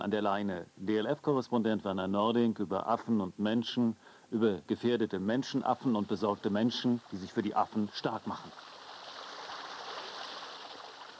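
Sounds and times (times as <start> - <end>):
speech: 0.0 - 8.7
small indoor waterfall splashing in a zoo's tropical house: 7.8 - 11.1.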